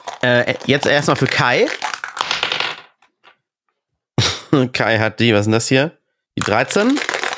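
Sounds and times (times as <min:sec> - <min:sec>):
dice clattering and rattling: 0:00.0 - 0:03.4, 0:06.4 - 0:07.3
speech: 0:00.2 - 0:01.8, 0:04.5 - 0:07.1.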